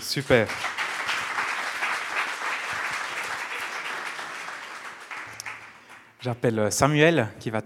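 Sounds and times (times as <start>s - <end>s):
audience applause: 0.0s - 6.2s
speech: 0.1s - 0.8s, 6.2s - 7.6s.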